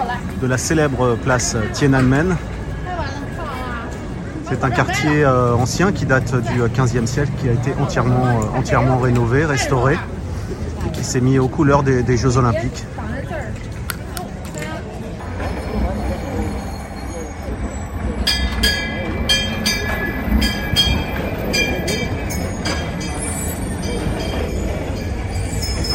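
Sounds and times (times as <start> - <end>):
faint voices murmuring: 0.0 - 25.9
old tram rumbling along its rails: 0.0 - 25.9
speech: 0.4 - 2.6, 4.5 - 10.1, 11.1 - 13.0
high metallic tram wheel squeal: 15.3 - 25.9.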